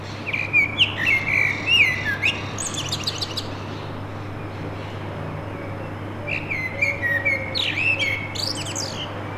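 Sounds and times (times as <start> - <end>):
common blackbird singing to defend its territory: 0.3 - 3.6, 6.3 - 9.2.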